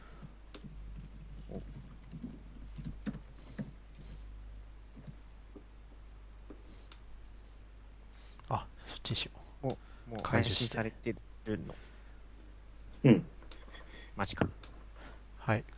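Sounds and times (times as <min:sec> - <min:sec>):
computer keyboard typing: 0:00.2 - 0:04.2, 0:04.9 - 0:05.2
speech: 0:09.1 - 0:11.9, 0:14.2 - 0:14.6, 0:15.5 - 0:15.7.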